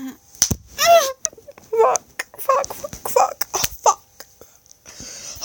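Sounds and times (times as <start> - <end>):
hand slapping own face: 0.4 - 0.7, 1.9 - 4.3.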